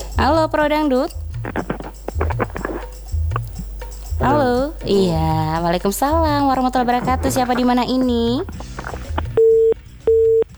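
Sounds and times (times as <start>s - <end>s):
speech: 0.2s - 1.8s, 4.2s - 8.7s
telephone busy tone after a call cuts off: 9.4s - 10.4s.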